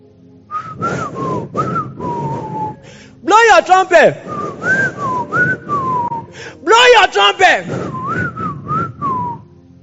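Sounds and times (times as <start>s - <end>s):
breathy whistling: 0.5s - 3.2s, 4.1s - 6.7s, 7.6s - 9.6s
speech: 3.6s - 4.8s, 6.7s - 7.8s.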